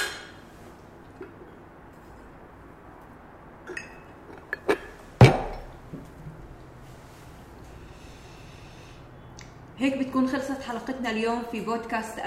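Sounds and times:
glasses clinking in a toast: 0:03.6 - 0:05.8
speech: 0:09.8 - 0:12.2.

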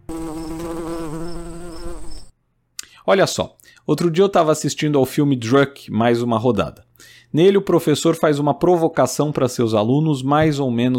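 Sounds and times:
fly buzzing as it takes off: 0:00.0 - 0:02.3
speech: 0:03.1 - 0:10.9.

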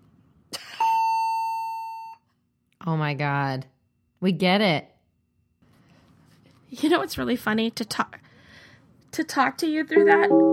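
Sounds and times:
speech: 0:02.8 - 0:04.9, 0:06.7 - 0:08.2, 0:09.1 - 0:10.5
ship's general emergency alarm blast during a crew drill: 0:10.0 - 0:10.5.

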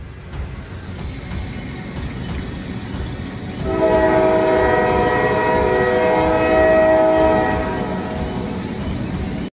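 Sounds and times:
train approaching on a railway track: 0:00.0 - 0:09.5
long sustained multi-tone train horn: 0:03.6 - 0:08.8.

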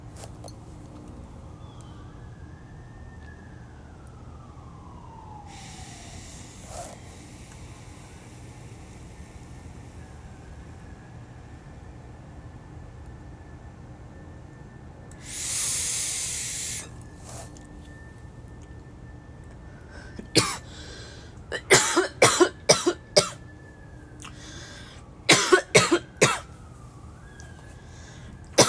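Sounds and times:
emergency vehicle siren passing outside: 0:00.0 - 0:28.6
person coughing harshly after taking a hit: 0:20.2 - 0:20.7, 0:21.5 - 0:23.4, 0:25.3 - 0:26.5.

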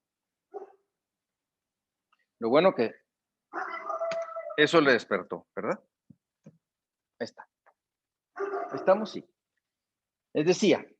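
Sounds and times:
dog yelping: 0:00.5 - 0:00.8, 0:03.5 - 0:04.6, 0:08.3 - 0:09.1
dog barking: 0:00.5 - 0:00.9, 0:03.5 - 0:04.1, 0:08.4 - 0:09.1
speech: 0:02.4 - 0:03.0, 0:04.6 - 0:05.9, 0:07.2 - 0:07.5, 0:08.7 - 0:09.3, 0:10.3 - 0:10.9.

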